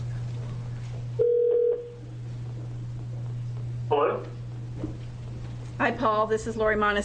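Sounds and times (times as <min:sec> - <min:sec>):
telephone line steady low hum: 0:00.0 - 0:06.8
single-pitch telephone dialing tones: 0:01.2 - 0:01.9
speech: 0:05.8 - 0:07.0.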